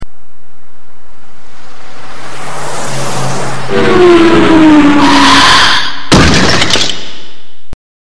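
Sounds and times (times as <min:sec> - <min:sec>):
brakes screeching: 0:01.9 - 0:06.0.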